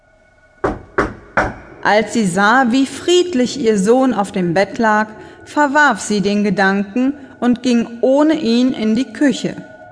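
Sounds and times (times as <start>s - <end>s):
quiet low hum: 0.0s - 8.7s
firm knocking on a door: 0.6s - 1.7s
speech: 1.8s - 9.7s.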